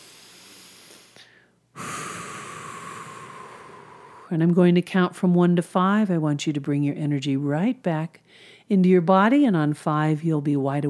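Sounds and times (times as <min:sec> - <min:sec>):
deep breath during a guided hypnosis session: 0:00.0 - 0:04.4, 0:08.2 - 0:08.7
speech: 0:04.3 - 0:10.8.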